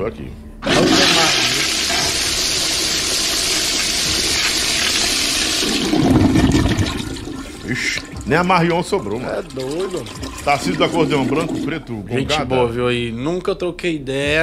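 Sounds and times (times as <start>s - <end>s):
speech: 0.0s - 1.3s, 7.7s - 14.4s
toilet flushing and bowl draining: 0.6s - 12.2s.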